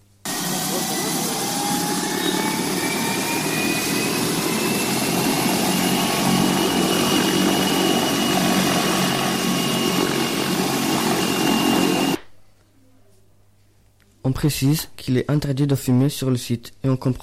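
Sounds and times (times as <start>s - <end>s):
helicopter taking off with engine whine and rotor roar: 0.3s - 12.2s
speech: 14.3s - 17.2s.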